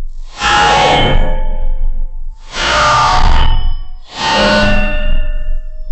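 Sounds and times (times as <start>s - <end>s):
giant metallic mecha robot: 0.2s - 5.8s.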